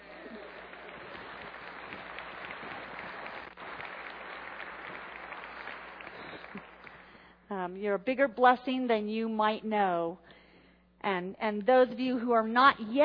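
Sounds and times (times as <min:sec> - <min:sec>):
audience applauding: 0:00.0 - 0:07.2
speech: 0:07.6 - 0:10.2, 0:11.0 - 0:13.0.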